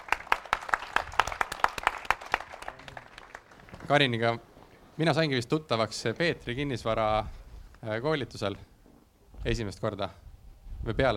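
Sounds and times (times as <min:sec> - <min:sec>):
small audience applause: 0:00.0 - 0:04.2
speech: 0:03.9 - 0:08.7, 0:09.4 - 0:10.2, 0:10.8 - 0:11.1.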